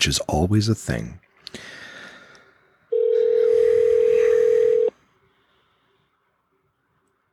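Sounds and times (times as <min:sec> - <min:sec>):
speech: 0:00.0 - 0:01.8
faint room noise: 0:00.0 - 0:07.3
telephone dial tone: 0:02.9 - 0:04.9.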